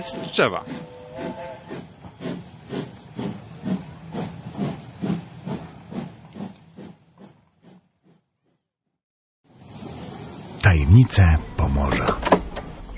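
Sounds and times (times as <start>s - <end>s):
speech: 0.0s - 1.3s, 11.0s - 12.4s
19th-century steam locomotive chuffing: 0.0s - 8.3s.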